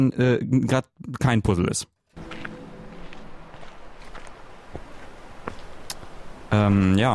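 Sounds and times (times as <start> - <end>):
speech: 0.0 - 2.0, 6.5 - 7.1
video game footsteps: 2.1 - 7.0.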